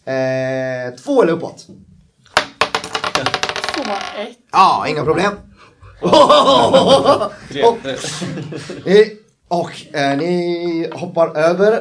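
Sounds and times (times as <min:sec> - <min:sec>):
speech: 0:00.0 - 0:01.9, 0:03.9 - 0:11.8
dice rolled in a game clattering onto a hard surface: 0:02.3 - 0:04.1
laughter: 0:05.9 - 0:09.0.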